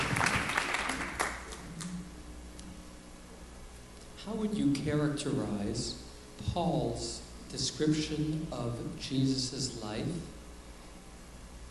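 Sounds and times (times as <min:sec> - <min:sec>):
small crowd applauding: 0:00.0 - 0:01.9
speech: 0:04.3 - 0:10.4.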